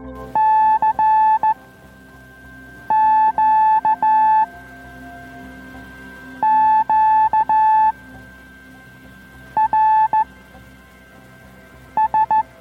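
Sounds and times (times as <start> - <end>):
constant low hum of radio noise: 0.0 - 12.5
Morse code CW signals on the 80 metre amateur band: 0.2 - 1.6, 2.9 - 4.5, 6.4 - 8.0, 9.6 - 10.3, 12.0 - 12.5.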